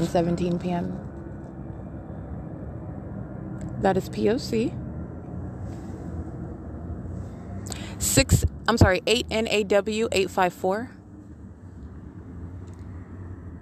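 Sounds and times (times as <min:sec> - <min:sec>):
speech: 0:00.0 - 0:01.1, 0:03.8 - 0:04.8, 0:08.0 - 0:11.0
helicopter flying overhead: 0:00.0 - 0:13.6.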